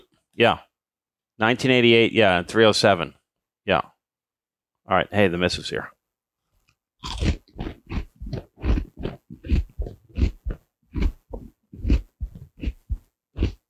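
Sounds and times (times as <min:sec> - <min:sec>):
speech: 0:00.4 - 0:00.7, 0:01.4 - 0:03.9, 0:04.9 - 0:06.0, 0:07.0 - 0:07.4
crunching bites chewing through cords: 0:07.0 - 0:13.6.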